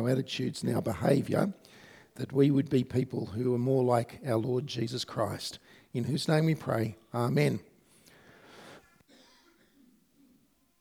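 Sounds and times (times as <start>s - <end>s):
speech: 0.0s - 7.7s
low murmur of room noise: 0.0s - 10.8s
person coughing in the audience: 8.9s - 10.4s.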